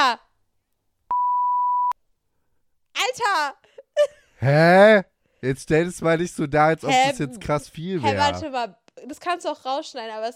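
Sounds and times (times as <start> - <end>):
censor bleep over a spoken word: 1.1 - 2.0
speech: 3.0 - 10.3.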